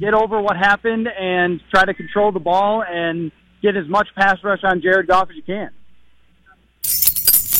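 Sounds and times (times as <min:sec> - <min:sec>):
speech: 0:00.0 - 0:05.8
keys jangling: 0:06.8 - 0:07.5.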